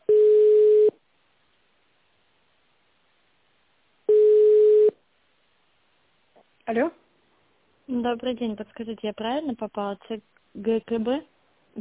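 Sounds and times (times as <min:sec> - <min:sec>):
telephone ringback tone as a call connects: 0:00.1 - 0:00.9, 0:04.1 - 0:05.0
speech: 0:06.7 - 0:07.0, 0:07.9 - 0:11.7.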